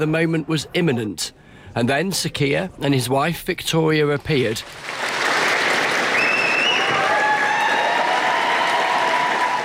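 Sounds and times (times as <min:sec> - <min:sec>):
speech: 0:00.0 - 0:05.1
sizeable crowd of staff applauding outdoors in the street: 0:04.6 - 0:09.6
faint whistles from a crowd: 0:06.1 - 0:07.0.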